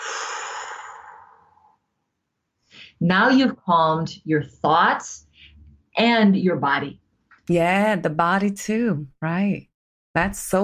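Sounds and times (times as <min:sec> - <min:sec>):
person exhaling softly: 0:00.0 - 0:01.8
speech: 0:03.0 - 0:05.3, 0:06.0 - 0:10.6.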